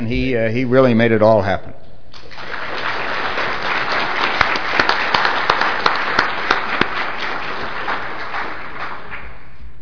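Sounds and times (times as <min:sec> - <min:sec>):
speech: 0:00.0 - 0:01.8
conference audience applauding a speaker: 0:02.2 - 0:09.6
sharp individual claps: 0:02.2 - 0:09.6.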